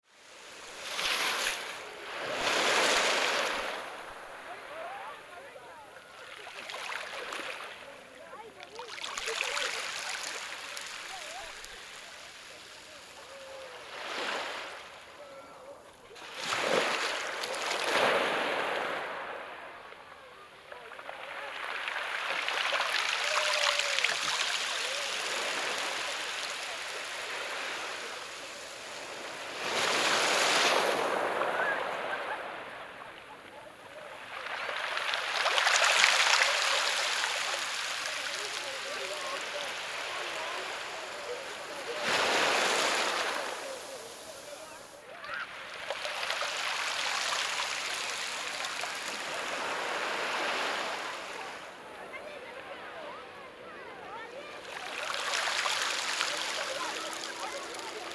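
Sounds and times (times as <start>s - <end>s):
waves on the shore at Cantolao beach in La Punta: 0.0s - 58.1s
people in the background at the beach: 0.1s - 58.1s.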